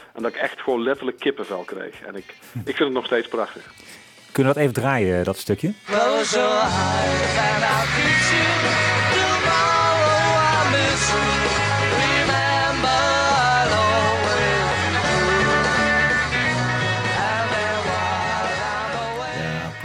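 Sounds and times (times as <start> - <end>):
speech: 0.2 - 9.0
full guitars: 5.8 - 19.8
layered harmony vocals: 5.8 - 19.8
live rock band playing loudly: 5.8 - 19.8
driving bass: 6.4 - 19.8.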